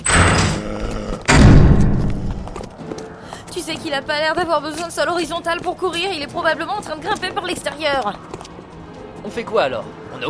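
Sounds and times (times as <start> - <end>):
heavy door slamming shut at the foot of a clock tower: 0.0 - 2.4
speech: 3.7 - 8.3, 9.2 - 10.2.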